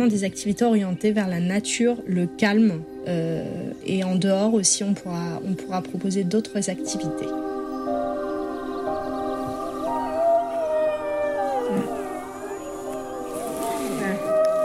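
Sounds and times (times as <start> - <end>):
speech: 0.0 - 7.5
chorus of sled dogs howling and yelping before departure: 7.4 - 14.6.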